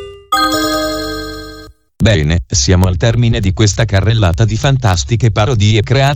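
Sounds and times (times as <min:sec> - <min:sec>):
messaging app new-message chime of two bell-like electronic tones: 0:00.3 - 0:01.7
speech: 0:02.1 - 0:06.1.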